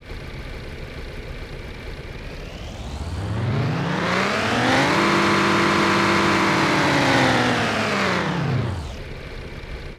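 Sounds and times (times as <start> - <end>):
engine sound: 1.3 - 9.1.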